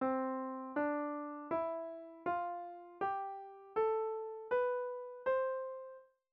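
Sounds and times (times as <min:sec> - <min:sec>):
piano in C major: 0:00.0 - 0:06.1.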